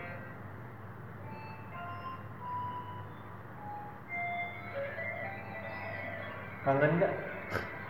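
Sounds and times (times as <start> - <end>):
dense buzzing musical backing: 0.0 - 7.8
keyboard synth imitating an electric guitar playing a melodic line: 4.4 - 7.8
speech: 6.6 - 7.8.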